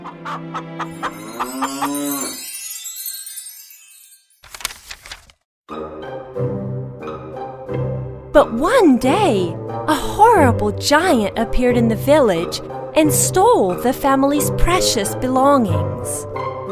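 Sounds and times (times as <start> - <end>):
speech: 0.3 - 2.5, 8.4 - 9.6, 10.2 - 16.7
cow mooing: 0.9 - 2.4
bell-like jingling: 0.9 - 4.4.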